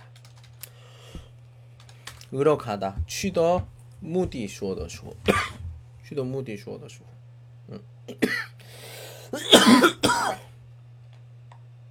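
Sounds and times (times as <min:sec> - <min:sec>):
speech: 0:02.3 - 0:05.5, 0:06.1 - 0:07.1, 0:07.7 - 0:08.4
person coughing harshly: 0:05.2 - 0:05.7, 0:07.7 - 0:08.6, 0:09.3 - 0:10.5.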